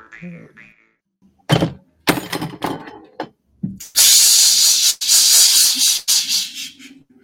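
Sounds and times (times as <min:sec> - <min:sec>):
glass beer bottle falling over: 0:01.5 - 0:03.3
glass beer bottle rattling knocks: 0:01.5 - 0:03.8
loud hissing spray from beer bottle: 0:03.8 - 0:06.9.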